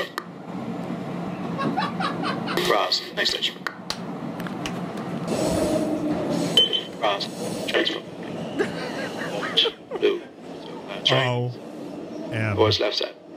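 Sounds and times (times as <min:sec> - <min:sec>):
moving metro train interior rumbling: 0:00.0 - 0:13.3
laughter: 0:01.5 - 0:02.8, 0:08.6 - 0:10.3
speech: 0:02.7 - 0:03.7, 0:07.1 - 0:08.7, 0:11.1 - 0:11.6, 0:12.4 - 0:13.1
voices: 0:06.7 - 0:08.4, 0:09.2 - 0:13.2
brief announcements: 0:10.9 - 0:13.0.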